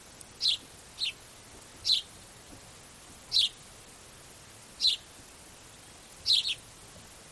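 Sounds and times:
faint hiss: 0.0 - 7.3
house sparrow chirps: 0.4 - 1.2, 1.8 - 2.1, 3.3 - 3.6, 4.8 - 5.1, 6.2 - 6.6.

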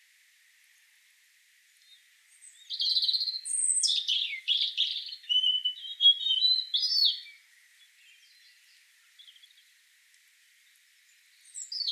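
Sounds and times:
Erithacus rubecula European robin singing: 1.7 - 9.8, 10.6 - 11.9.

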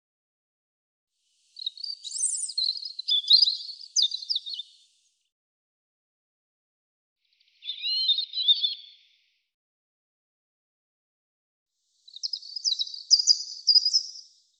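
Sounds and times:
European robin song: 1.2 - 5.1, 7.3 - 9.3, 11.9 - 14.5.

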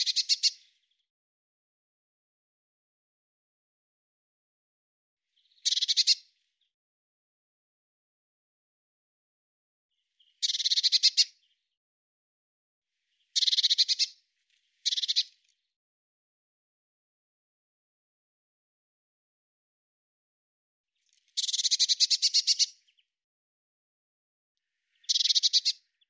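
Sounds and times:
Eurasian blue tit churring: 0.0 - 0.6, 5.5 - 6.2, 10.3 - 11.3, 13.4 - 14.1, 14.8 - 15.3, 21.4 - 22.8, 25.0 - 25.8.

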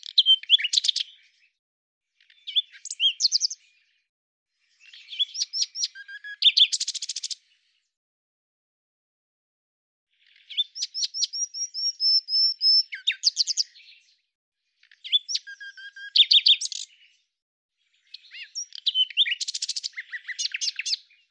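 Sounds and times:
common nightingale song: 0.0 - 1.6, 2.2 - 4.0, 4.6 - 7.8, 10.1 - 21.2.

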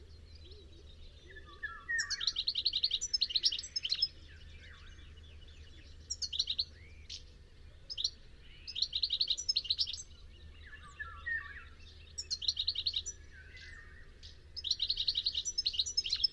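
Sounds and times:
bird chirping with high thin rapid notes: 0.0 - 16.3
faint constant low hum: 0.0 - 16.3.

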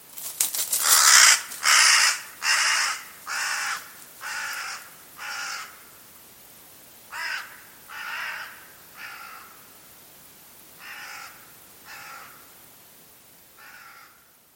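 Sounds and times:
faint background hiss: 0.0 - 14.5
bird calling with rough hoarse caws: 0.8 - 6.0, 7.1 - 9.7, 10.8 - 12.6, 13.6 - 14.4.

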